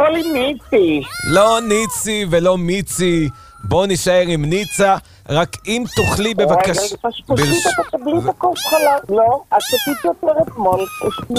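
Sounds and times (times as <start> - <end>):
several cats meowing loudly: 0.0 - 11.3
speech: 0.1 - 11.3.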